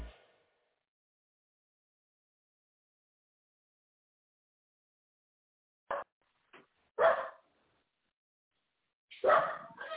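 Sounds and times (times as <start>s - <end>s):
guard dog barking sharply: 7.0s - 7.5s, 9.1s - 9.9s.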